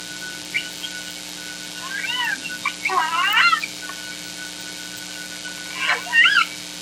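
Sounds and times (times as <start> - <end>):
Southern Resident killer whale calls in inland waters of Washington: 1.8 - 3.8, 5.7 - 6.6.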